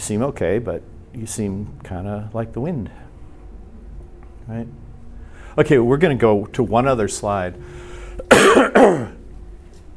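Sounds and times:
speech: 0.0s - 3.1s, 4.5s - 4.8s, 5.6s - 9.2s
person coughing harshly: 8.2s - 9.2s.

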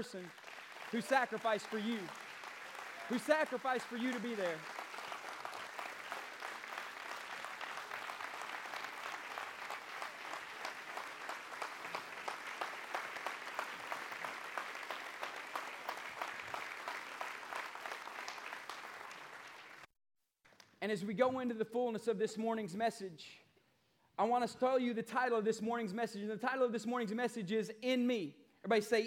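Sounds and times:
speech: 0.0s - 2.2s, 3.1s - 4.8s, 20.9s - 23.4s, 24.2s - 29.0s
large church audience applauding: 0.0s - 19.9s.

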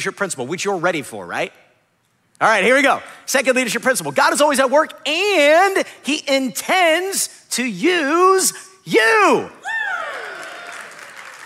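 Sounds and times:
speech: 0.0s - 1.7s, 2.4s - 9.6s
loud falling whoop of cheering: 9.6s - 11.3s
audience at a Bible class lecture clapping: 10.0s - 11.4s.

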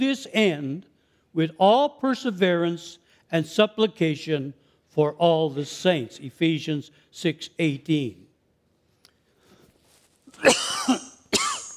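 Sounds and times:
speech: 0.0s - 8.2s, 10.4s - 11.0s
harsh coughs: 10.4s - 11.7s.

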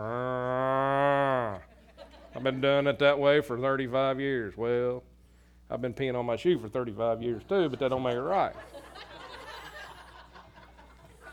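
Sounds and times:
cow bellowing: 0.0s - 1.7s
laughter: 1.3s - 2.7s, 7.4s - 11.3s
speech: 2.4s - 5.1s, 5.7s - 9.1s.

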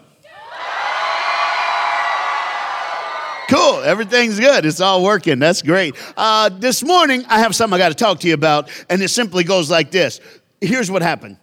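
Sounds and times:
large crowd yelling: 0.2s - 4.5s
speech: 3.5s - 11.4s.

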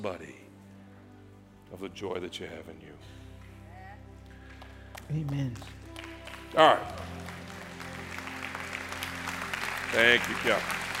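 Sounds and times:
speech: 0.0s - 0.4s, 1.7s - 3.2s, 5.1s - 5.8s, 6.5s - 7.1s, 9.9s - 10.9s
audience applauding: 4.2s - 10.9s.

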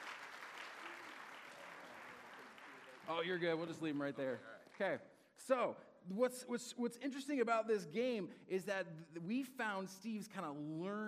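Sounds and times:
audience applause: 0.0s - 4.9s
speech: 3.1s - 11.0s.

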